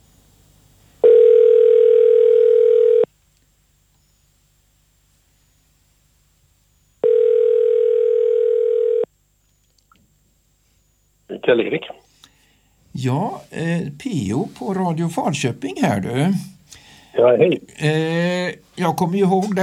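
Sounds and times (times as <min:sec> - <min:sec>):
telephone ringing tone while placing a phone call: 0:01.0 - 0:03.1, 0:07.0 - 0:09.1
speech: 0:11.5 - 0:12.0, 0:13.0 - 0:16.6, 0:17.2 - 0:19.6.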